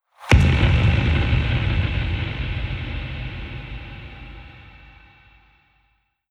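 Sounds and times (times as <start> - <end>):
deep impact: 0.2 - 5.6.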